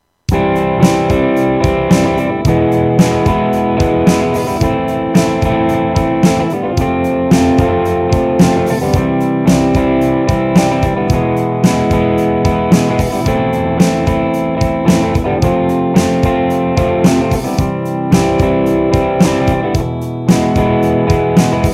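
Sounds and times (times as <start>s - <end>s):
strumming: 0.3s - 21.7s.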